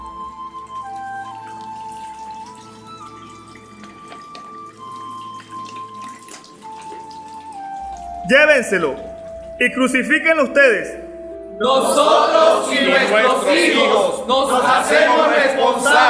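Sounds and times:
small water drips and sloshes: 0.0s - 9.6s
steady sustained musical tones humming: 0.0s - 16.0s
hands splashing and swishing in a basin of water: 0.8s - 8.2s
speech: 8.3s - 11.0s, 11.6s - 16.0s.

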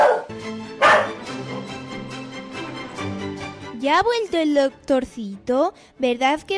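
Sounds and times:
rabid dog barking: 0.0s - 1.2s
speech: 3.8s - 6.5s.

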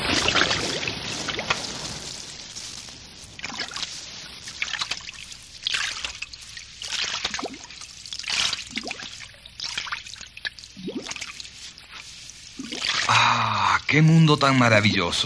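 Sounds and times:
boat sliding into the Caribbean Sea: 0.0s - 3.9s
water splashing, trickling and sloshing around a boat hull: 0.0s - 13.1s
speech: 14.0s - 15.2s.

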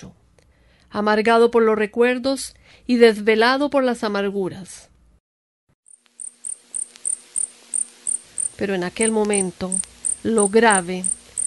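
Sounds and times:
speech: 0.0s - 0.2s, 1.0s - 4.9s, 8.6s - 11.2s
cricket chirping high-pitched trills: 5.9s - 11.4s.

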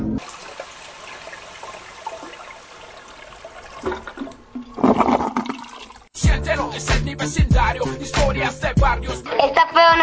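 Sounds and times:
speech: 0.2s - 0.5s, 6.8s - 10.0s
water rushing: 0.2s - 6.2s.

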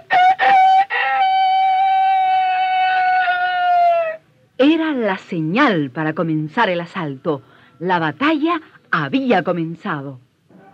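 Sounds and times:
rooster crowing: 0.0s - 4.2s
speech: 5.1s - 10.2s.

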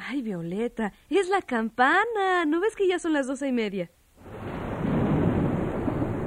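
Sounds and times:
speech: 0.1s - 4.4s
thunder rumbling during a storm: 4.2s - 6.2s.

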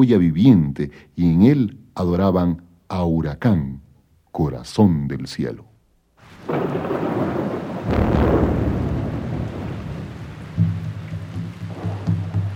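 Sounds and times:
speech: 0.0s - 3.8s, 4.4s - 5.7s
heavy rolling thunder: 6.2s - 12.5s
steady rain: 6.2s - 12.5s.

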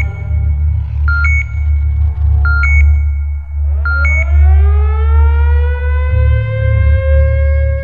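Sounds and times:
high electronic beeps of a motion sensor security alarm: 0.0s - 4.5s
heavy low rumble: 0.0s - 7.8s
security alarm siren tone swooping upward: 0.0s - 7.8s.

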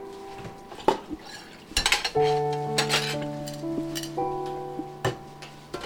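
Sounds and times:
dishes, pots and cutlery clinking and clattering as they are washed: 0.5s - 5.8s
knocks and scrapes: 0.7s - 4.2s.

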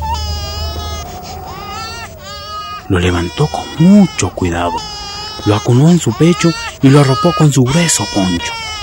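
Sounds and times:
low steady rumble: 0.0s - 6.9s
baby crying: 0.0s - 8.8s
speech: 2.9s - 8.8s.

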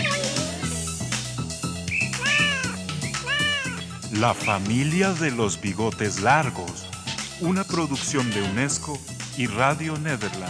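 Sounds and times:
rhythmic music: 0.0s - 10.4s
cat meowing: 2.0s - 4.2s, 8.0s - 8.6s
speech: 4.2s - 10.4s.

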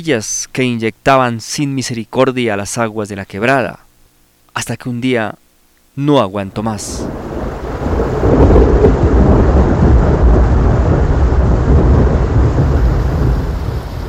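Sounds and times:
speech: 0.0s - 3.8s, 4.6s - 5.4s, 6.0s - 7.2s
heavy rain pouring: 6.7s - 14.0s
deep thunder rumbling: 6.8s - 14.0s.

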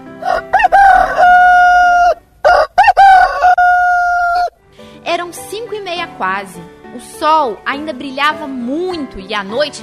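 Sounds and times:
rooster crowing in sunshine: 0.2s - 4.5s
speech: 6.2s - 9.8s.

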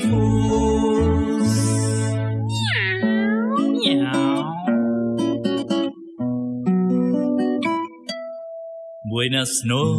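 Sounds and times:
musical backing with a low sustained tone: 0.0s - 7.9s, 9.1s - 9.9s
cat meowing: 2.5s - 4.9s
speech: 9.3s - 9.9s.

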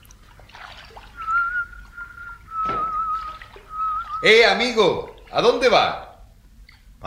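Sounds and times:
canoe paddle splashing and sloshing river water: 0.0s - 5.9s
man whistling softly in a canoe on a river: 1.1s - 4.4s
speech: 4.2s - 6.0s.

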